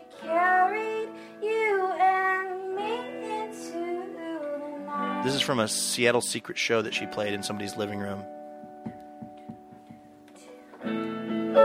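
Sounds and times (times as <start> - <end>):
female singer singing live in a living room in Seattle: 0.0 - 5.4
steady guitar chords: 0.0 - 11.6
speech: 5.2 - 8.4.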